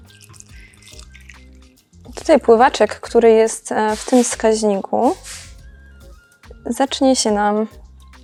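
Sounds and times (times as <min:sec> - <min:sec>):
water pouring into a plant pot: 0:00.0 - 0:02.4, 0:03.8 - 0:05.6
speech: 0:02.0 - 0:05.4, 0:06.6 - 0:07.8.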